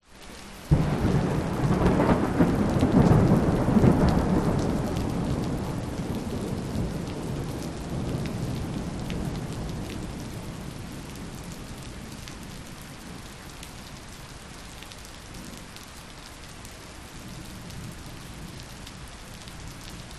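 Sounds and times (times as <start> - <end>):
medium rain on street in Kuala Lumpur Malaysia: 0.0 - 20.1
big distant thunders: 0.7 - 11.4.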